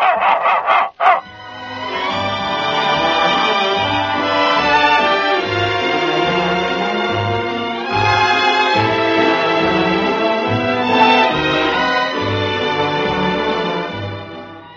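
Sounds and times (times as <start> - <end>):
dog barking sharply on command: 0.0 - 1.3
sustained music: 1.2 - 14.7.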